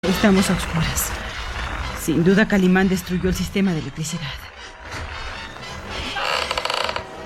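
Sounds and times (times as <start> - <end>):
speech: 0.0 - 1.2, 2.1 - 4.6
bedroom door creaking open: 4.9 - 7.2.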